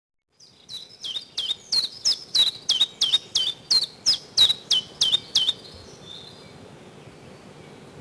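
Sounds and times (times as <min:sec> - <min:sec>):
chiffchaff singing clipped notes in spring: 0:00.4 - 0:07.9.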